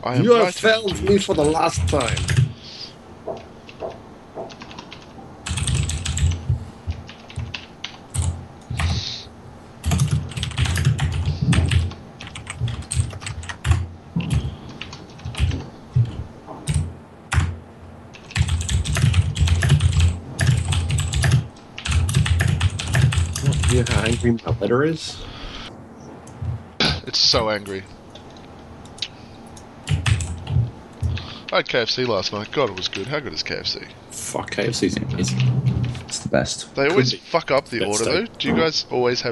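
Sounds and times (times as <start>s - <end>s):
speech: 0.0s - 2.4s, 24.2s - 25.4s, 27.1s - 28.0s, 31.6s - 35.6s, 36.3s - 39.3s
rapid forceful typing on a computer keyboard: 0.9s - 2.5s, 3.3s - 9.0s, 9.8s - 24.3s, 28.9s - 31.3s.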